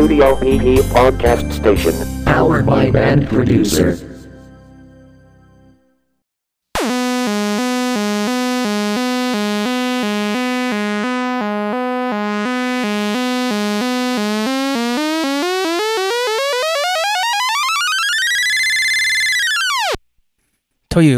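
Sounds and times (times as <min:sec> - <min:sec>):
speech: 0:00.1 - 0:04.1, 0:20.9 - 0:21.1
analog synthesizer tones: 0:06.8 - 0:20.0.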